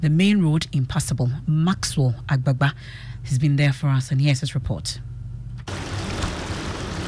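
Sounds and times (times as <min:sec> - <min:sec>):
speech: 0:00.0 - 0:05.1
gushing floodwater from an overflowing river at a road cut-off in Abamfu: 0:05.7 - 0:07.0.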